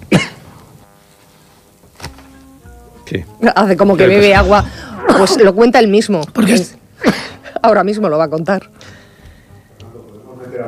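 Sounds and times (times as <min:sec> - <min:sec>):
person coughing after eating an almond: 0:00.0 - 0:00.5
speech: 0:03.1 - 0:08.8.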